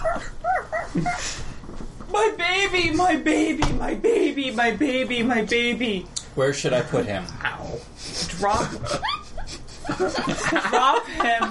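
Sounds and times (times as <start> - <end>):
several dogs barking and yelping: 0.0 - 1.4
speech: 0.9 - 1.4, 2.2 - 9.1, 9.9 - 11.5
laughter: 8.4 - 11.5.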